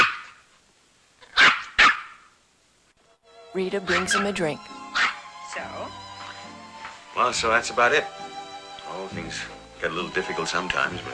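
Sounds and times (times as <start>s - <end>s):
toy poodle barking with high-pitched yaps: 0.0s - 0.4s, 1.2s - 2.3s, 4.9s - 5.2s
speech: 3.6s - 4.8s, 7.2s - 8.2s, 8.9s - 11.1s.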